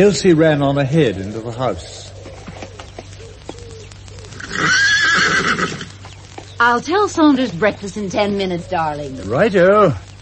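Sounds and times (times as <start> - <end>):
speech: 0.0 - 2.1, 6.6 - 10.1
soft horse hoof clops: 2.2 - 6.6
horse neighing: 4.3 - 5.9.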